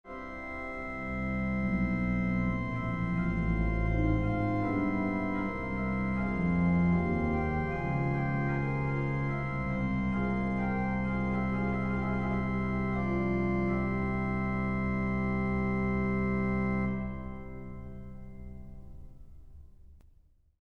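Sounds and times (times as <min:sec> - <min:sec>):
organ: 0:00.1 - 0:19.6
strings: 0:00.1 - 0:19.6.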